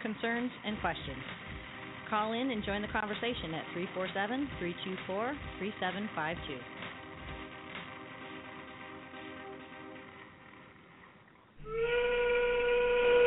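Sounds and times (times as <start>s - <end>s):
speech: 0.0s - 1.5s, 2.1s - 6.8s
low rumbling mechanical drone: 0.0s - 13.2s
factory steam whistle blowing: 11.6s - 13.2s.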